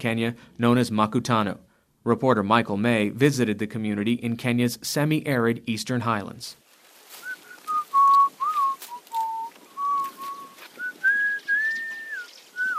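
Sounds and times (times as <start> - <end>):
speech: 0.0 - 6.6
man whistling a wandering tune while working as caretaker of an earthen dam: 7.2 - 12.7.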